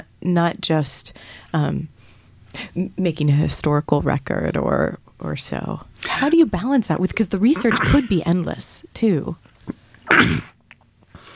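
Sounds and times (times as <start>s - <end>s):
speech: 0.2s - 9.5s, 10.2s - 10.5s
person sneezing: 7.6s - 8.1s, 10.1s - 10.6s
intake of breath: 11.1s - 11.3s.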